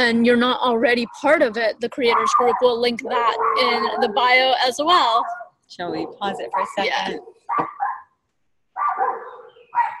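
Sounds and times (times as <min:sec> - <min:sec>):
speech: 0:00.0 - 0:07.8
dog barking: 0:02.0 - 0:04.3, 0:05.2 - 0:08.1, 0:08.8 - 0:09.9.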